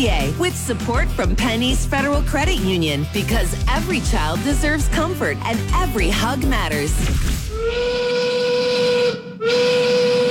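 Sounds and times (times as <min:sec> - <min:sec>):
speech: 0:00.0 - 0:08.1
loud sustained steam whistle blowing with hissing edge: 0:07.5 - 0:10.2.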